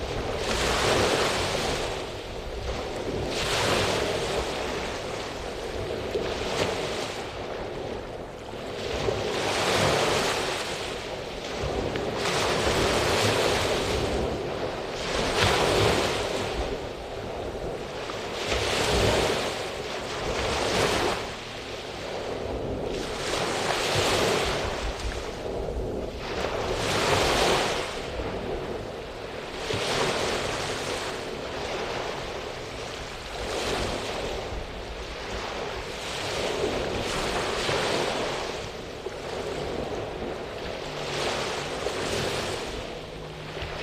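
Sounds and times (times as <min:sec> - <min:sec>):
constant low rumble of surf: 0:00.0 - 0:43.8
waves washing onto a warm beach: 0:00.0 - 0:43.8.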